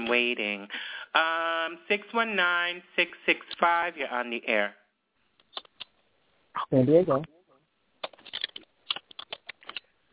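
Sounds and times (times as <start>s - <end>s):
speech: 0.1s - 4.8s, 6.6s - 7.4s
typing on a keyboard: 8.1s - 10.1s.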